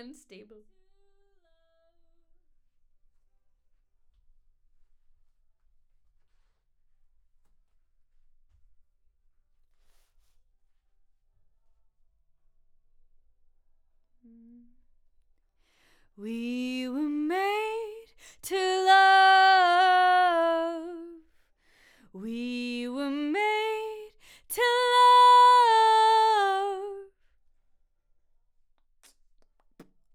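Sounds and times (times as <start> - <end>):
voice: 0.0 - 1.7, 16.2 - 21.2, 22.2 - 27.1.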